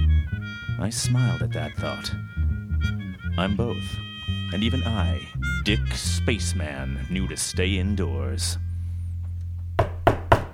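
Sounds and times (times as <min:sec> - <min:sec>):
steady low hum: 0:00.0 - 0:10.1
speech: 0:00.8 - 0:02.3, 0:03.4 - 0:08.6
knocking on a door: 0:09.8 - 0:10.5.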